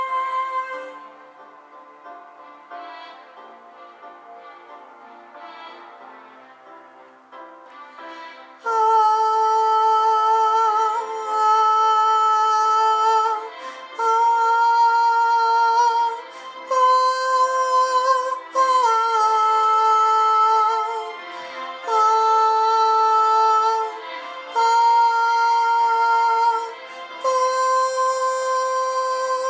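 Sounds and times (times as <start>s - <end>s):
vocal improvisation: 0.0s - 1.1s, 8.5s - 29.4s.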